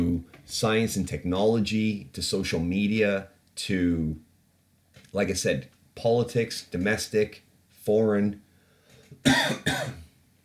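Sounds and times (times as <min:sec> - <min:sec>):
speech: 0:00.5 - 0:04.3, 0:05.1 - 0:08.4, 0:09.2 - 0:10.0
sharp coughs: 0:09.2 - 0:10.1.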